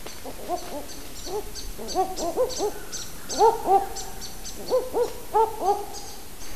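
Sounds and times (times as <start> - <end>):
faint bird chatter: 0.1 - 6.5
male and female owl duetting with rising hoots: 0.2 - 6.2.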